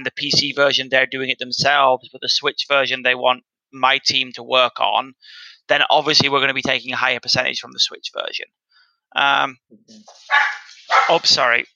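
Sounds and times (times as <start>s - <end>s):
speech: 0.0s - 11.7s
dogs barking: 10.3s - 11.3s.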